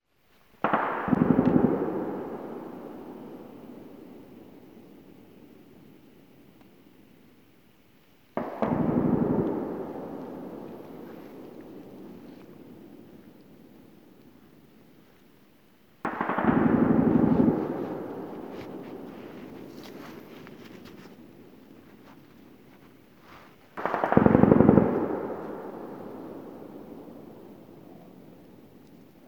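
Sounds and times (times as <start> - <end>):
gunfire: 0.6 - 5.4, 8.4 - 13.5, 16.0 - 22.2, 23.3 - 28.5.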